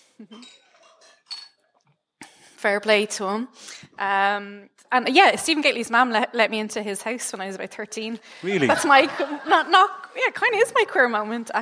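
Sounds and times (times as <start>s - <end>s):
speech: 0.2s - 0.7s, 2.6s - 11.6s
glasses clinking in a toast: 0.3s - 1.7s
laughter: 8.4s - 11.0s.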